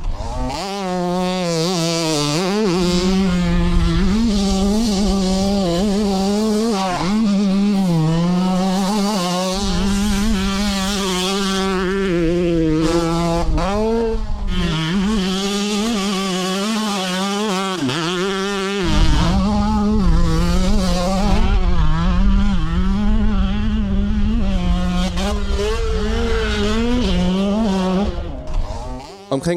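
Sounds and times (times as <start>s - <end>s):
two-stroke motocross motorcycle engine revving: 0.0s - 29.5s.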